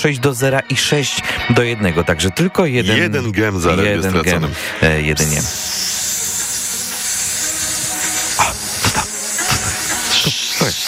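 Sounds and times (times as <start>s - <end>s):
speech: 0.0s - 5.9s
snake hissing: 4.5s - 10.8s.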